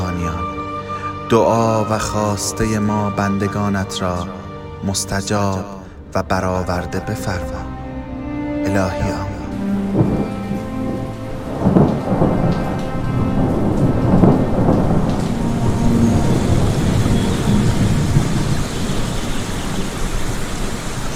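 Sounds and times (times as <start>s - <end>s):
heavy rain: 0.0s - 4.8s, 6.8s - 21.1s
speech: 1.3s - 7.7s, 8.7s - 9.3s
low rolling thunder: 9.6s - 21.1s.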